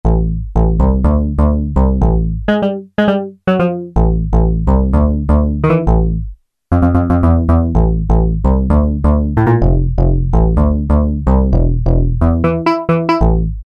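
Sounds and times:
PPG and analog synth bass on an Akai SG01v: 0.0s - 13.6s.

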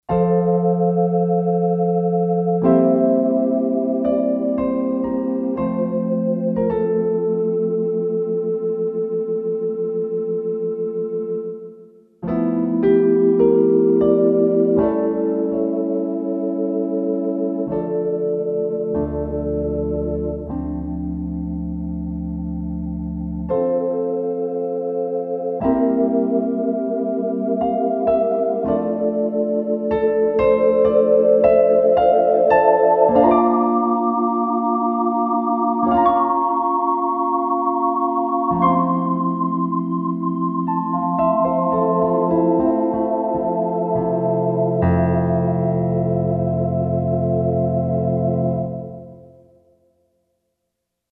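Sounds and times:
church piano factory patch on a Roland SC-880: 0.0s - 50.0s.

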